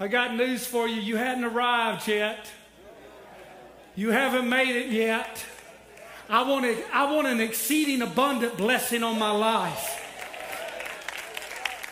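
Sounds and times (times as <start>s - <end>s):
person preaching a sermon: 0.0s - 2.6s, 4.0s - 10.1s
speech: 0.0s - 2.6s, 4.0s - 5.5s, 6.3s - 10.0s
scattered hand claps from a church audience: 9.8s - 11.9s.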